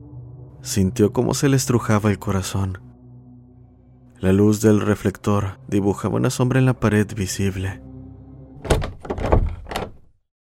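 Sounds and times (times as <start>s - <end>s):
speech: 0.6s - 2.9s, 4.2s - 7.9s
door slamming shut: 8.6s - 10.1s.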